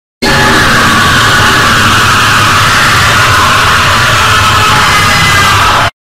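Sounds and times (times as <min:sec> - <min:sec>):
really loud scream: 0:00.2 - 0:06.0.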